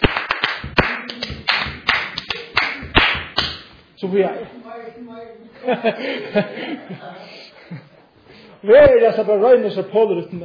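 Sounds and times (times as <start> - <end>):
hands clapping in a steady rhythm: 0.0 - 3.9
speech: 4.0 - 7.8, 8.6 - 10.4
laughter: 5.6 - 8.0.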